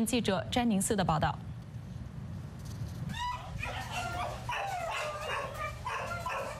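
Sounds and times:
speech: 0.0 - 1.5
abandoned dogs barking and yipping in an animal shelter in Taiwan: 3.1 - 6.5.

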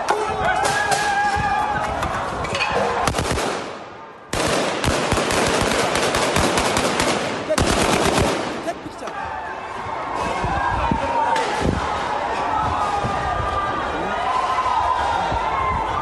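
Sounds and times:
noisy outdoor crowd at a street protest: 0.0 - 16.0
gunfire at a street protest: 3.1 - 8.8.

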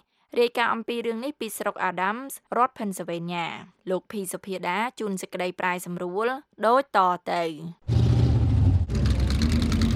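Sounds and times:
speech: 0.3 - 7.9
classic cars racing at a county fair in Adams County Pennsylvania: 7.9 - 9.9.

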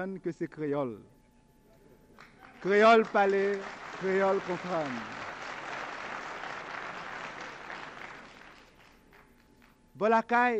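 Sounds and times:
speech: 0.0 - 1.2, 2.6 - 5.2, 10.0 - 10.5
crowd applauding: 2.2 - 9.8.

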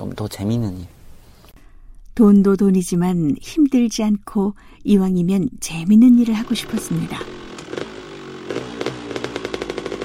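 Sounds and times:
speech: 0.0 - 1.0, 2.2 - 7.4
delivery rider's motorcycle engine revving: 6.1 - 10.0.

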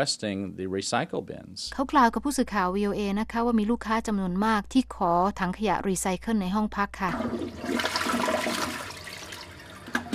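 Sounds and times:
speech: 0.0 - 8.0
water-saving toilet flushing: 7.1 - 10.1.

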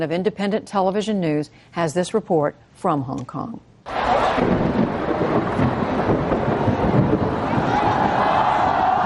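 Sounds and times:
speech: 0.0 - 4.8
huge crowd of pro-democracy student-led street protesters in Hong Kong: 3.9 - 9.0.

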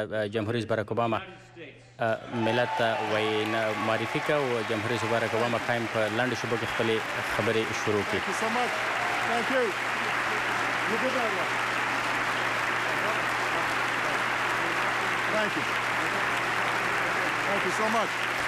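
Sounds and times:
speech: 0.0 - 10.1, 10.9 - 11.7, 15.4 - 15.8, 17.5 - 18.3
large audience applauding in a standing ovation: 2.3 - 18.4.

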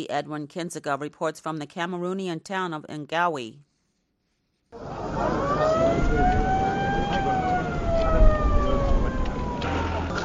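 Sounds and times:
speech: 0.0 - 3.7
street noise in a Cameroonian town: 4.7 - 10.2
ambulance siren wailing in a Cameroonian border town: 4.8 - 10.2.

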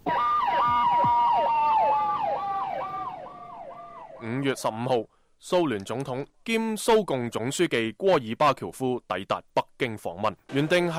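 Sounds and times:
ambulance siren near Tiananmen Square in Beijing during the 1989 student hunger strike: 0.0 - 4.5
speech: 4.5 - 10.9.

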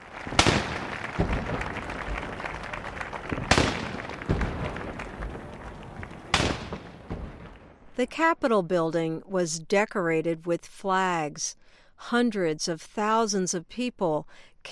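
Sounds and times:
outdoor crowd murmur: 0.0 - 6.5
cannon blasts with rolling echo: 0.2 - 7.9
speech: 8.0 - 14.7.

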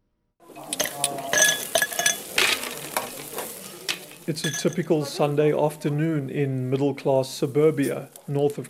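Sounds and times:
meat sizzling on a barbecue: 0.4 - 8.6
ice cubes clinking into a glass: 0.6 - 4.9
speech: 4.3 - 8.6.

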